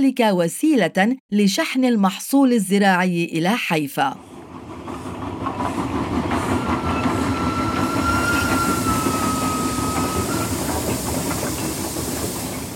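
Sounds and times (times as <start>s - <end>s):
speech: 0.0s - 4.3s
train rolling along railway tracks: 4.1s - 12.7s
thin high squeal: 6.4s - 11.8s.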